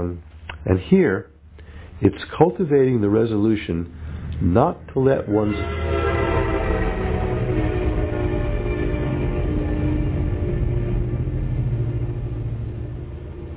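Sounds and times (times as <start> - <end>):
speech: 0.0 - 1.3, 2.0 - 6.0
train cars rumbling: 0.0 - 13.5
train horn blast: 5.2 - 13.5.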